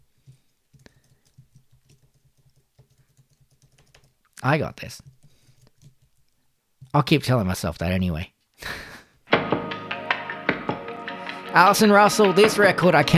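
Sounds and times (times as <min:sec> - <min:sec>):
typing on a computer keyboard: 0:00.2 - 0:04.3, 0:04.9 - 0:06.4
speech: 0:04.4 - 0:05.1, 0:06.9 - 0:08.8, 0:11.6 - 0:13.1.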